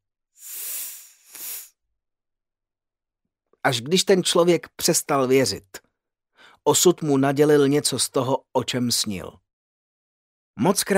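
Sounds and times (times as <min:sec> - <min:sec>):
snake hissing: 0:00.4 - 0:01.8
speech: 0:03.6 - 0:05.9, 0:06.6 - 0:09.4, 0:10.6 - 0:10.9.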